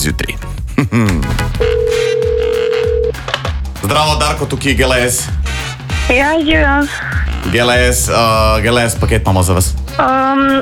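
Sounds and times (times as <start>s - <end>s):
speech: 0.0s - 1.6s, 3.9s - 10.6s
telephone ringing tone on a call: 1.6s - 3.2s.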